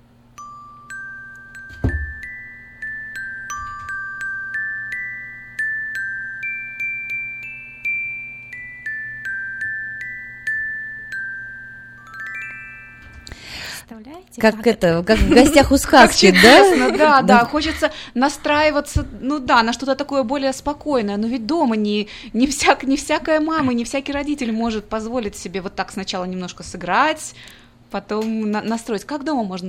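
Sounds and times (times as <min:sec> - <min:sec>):
faint steady hum: 0:00.0 - 0:29.6
toy metallophone playing a slow simple melody: 0:00.4 - 0:13.6
speech: 0:13.9 - 0:29.6
laughter: 0:15.2 - 0:17.6.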